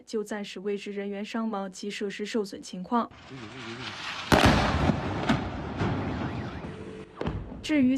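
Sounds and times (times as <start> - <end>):
speech: 0.0 - 4.9, 7.7 - 7.9
explosions from an airstrike: 3.2 - 7.7
wailing siren: 5.5 - 7.3.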